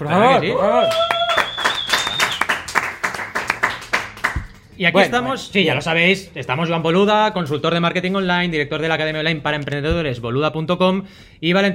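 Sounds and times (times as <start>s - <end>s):
speech: 0.0s - 1.1s, 4.8s - 11.7s
vocal whoop: 0.2s - 1.9s
stadium audience applauding: 0.6s - 4.7s
high whistle: 0.7s - 2.6s.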